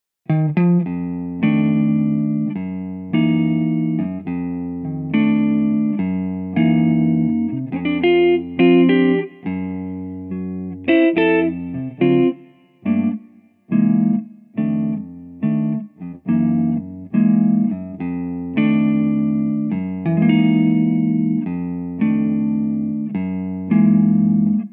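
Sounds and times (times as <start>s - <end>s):
guitar note in F: 0.3s - 24.7s.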